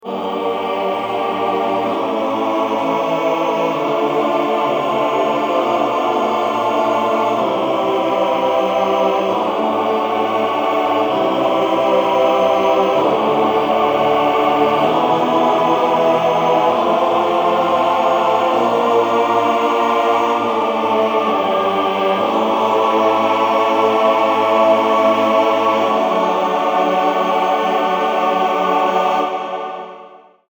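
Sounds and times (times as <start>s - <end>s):
Memotron male choir synthesizer sound: 0.0s - 30.4s.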